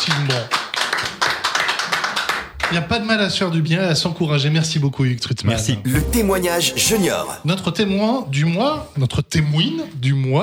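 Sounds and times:
small audience applauding: 0.0 - 2.8
speech: 2.7 - 10.4.

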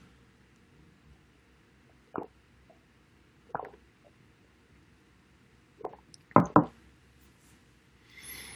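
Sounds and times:
person drinking water: 3.5 - 3.8
soft rustle: 7.2 - 7.7.

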